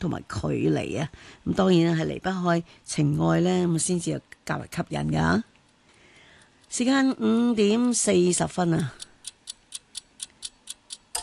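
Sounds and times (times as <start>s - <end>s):
speech: 0.0s - 5.5s, 6.7s - 9.1s
clock ticking: 6.4s - 11.2s.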